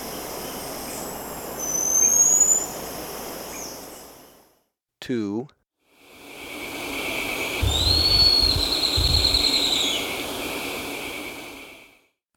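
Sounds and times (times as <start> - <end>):
steady insect drone in Ecuador: 0.0 - 4.6, 5.9 - 12.0
Black-streaked puffbird call in Ecuador: 1.6 - 2.8, 7.1 - 10.2
low rumble: 7.6 - 9.8.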